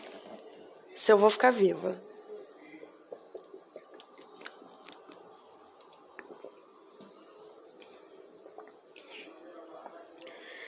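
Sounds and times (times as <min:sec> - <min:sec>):
soft hiss: 0:00.0 - 0:10.6
speech: 0:01.0 - 0:02.1
sipping and swallowing tap water from a glass: 0:02.5 - 0:10.6
small wet mouth clicks: 0:03.1 - 0:06.7.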